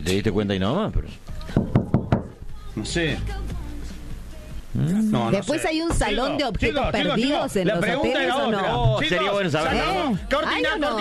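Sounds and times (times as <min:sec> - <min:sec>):
speech: 0:00.0 - 0:01.8, 0:02.8 - 0:03.5, 0:04.7 - 0:10.9
knocking on a hotel room door: 0:01.6 - 0:02.4.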